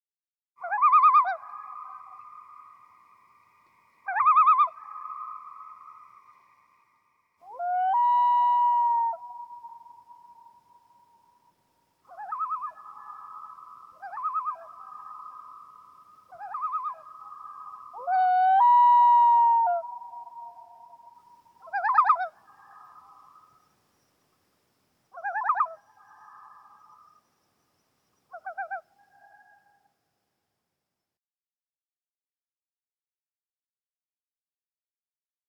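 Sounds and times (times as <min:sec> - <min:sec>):
loon calling: 0:04.0 - 0:06.4, 0:07.4 - 0:11.2, 0:12.1 - 0:23.5, 0:25.1 - 0:27.2, 0:28.3 - 0:29.8.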